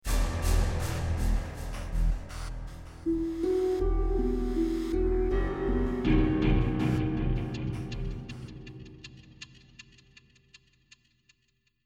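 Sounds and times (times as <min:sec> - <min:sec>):
music stinger: 0:00.0 - 0:09.5.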